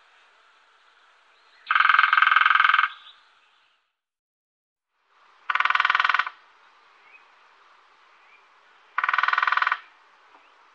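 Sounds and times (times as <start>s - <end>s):
lesser spotted woodpecker drumming: 1.7s - 3.1s, 5.4s - 6.4s, 8.9s - 10.7s.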